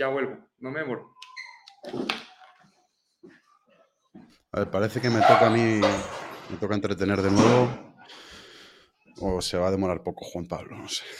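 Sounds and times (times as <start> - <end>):
speech: 0.0 - 1.2, 1.8 - 2.3, 4.2 - 8.2, 9.2 - 11.1
door creaking shut: 5.0 - 7.9.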